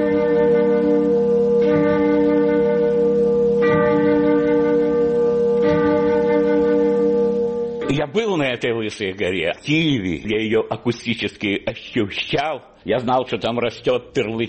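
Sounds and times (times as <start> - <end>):
monastery church bells ringing: 0.0 - 9.4
speech: 8.1 - 14.4.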